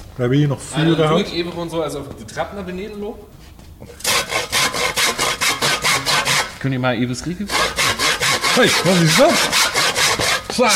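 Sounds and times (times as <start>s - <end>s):
speech: 0.2s - 4.6s, 6.6s - 7.8s, 8.5s - 9.8s, 10.6s - 10.7s
hand saw cutting through the object people are sitting on: 4.0s - 6.6s, 7.4s - 10.7s.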